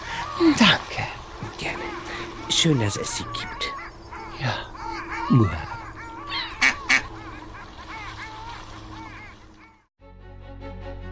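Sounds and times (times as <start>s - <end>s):
flock of ducks quacking and honking while being fed bread: 0.0s - 9.9s
speech: 0.4s - 1.9s, 2.5s - 3.7s, 4.4s - 4.7s, 5.3s - 5.7s
sharp louder duck squawks: 1.4s - 9.9s.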